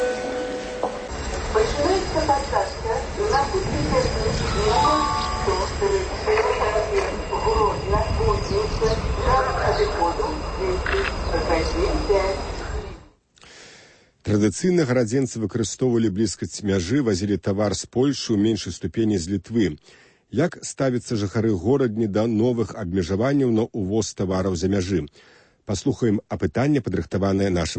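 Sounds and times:
steady train station noise: 0.0s - 13.1s
public-address voice announcing train boarding: 0.8s - 13.0s
speech: 14.4s - 27.7s.

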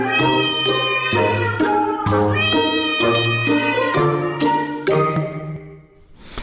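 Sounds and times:
domestic cat meowing: 0.0s - 4.8s.

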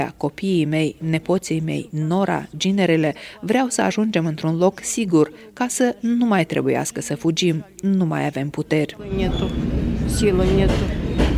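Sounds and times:
speech: 0.0s - 11.3s
moving passenger train rumbling: 9.0s - 11.3s
thin metallic squeal of a moving passenger train: 9.2s - 11.3s.

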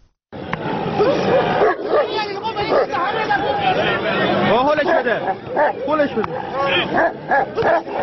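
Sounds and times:
crowd of people shouting and chattering: 0.4s - 8.0s
dogs barking, snarling and yelping in a scuffle: 0.9s - 3.1s, 4.8s - 8.0s.

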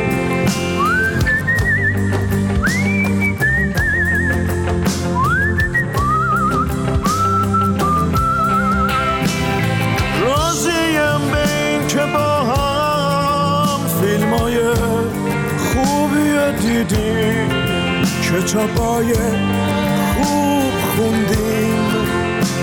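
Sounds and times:
steady music: 0.0s - 22.6s
person whistling a melody with vibrato: 0.5s - 9.5s.

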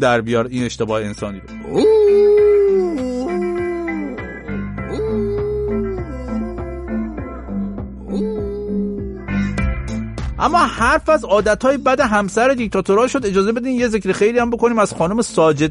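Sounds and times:
speech: 0.0s - 2.4s, 10.4s - 15.6s
dog whimpering and howling: 1.7s - 9.3s.

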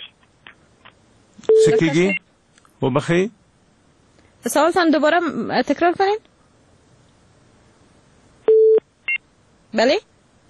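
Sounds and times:
telephone busy tone after a call is cut off: 1.5s - 1.9s, 8.5s - 8.8s
speech: 1.7s - 3.4s, 4.4s - 6.3s, 9.7s - 10.1s.

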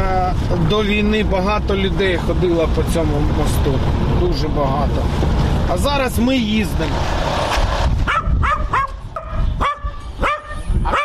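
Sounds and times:
speech: 0.4s - 7.4s
several dogs barking and yapping: 8.0s - 11.0s.

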